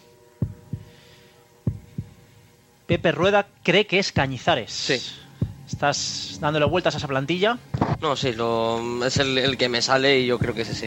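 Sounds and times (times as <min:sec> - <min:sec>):
faint hum: 0:00.0 - 0:10.8
slow steady heartbeat thumping: 0:00.4 - 0:01.0, 0:01.6 - 0:02.2, 0:02.9 - 0:03.3, 0:04.2 - 0:04.6, 0:05.3 - 0:08.4, 0:09.1 - 0:10.8
speech: 0:02.9 - 0:10.8.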